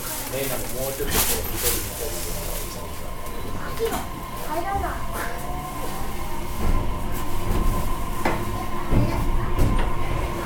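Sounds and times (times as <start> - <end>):
JR Kyushu BEC819 series electric train rumble inside the carriage: 0.0 - 10.4
constant electric train motor hum: 0.0 - 10.4
speech: 0.3 - 5.5
rattling clunks of train over the track: 0.7 - 10.4.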